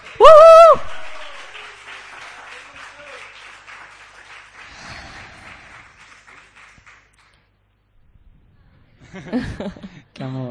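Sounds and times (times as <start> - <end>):
crowd applauding: 0.0 - 7.5
laughter: 9.0 - 10.1
speech: 9.4 - 10.4.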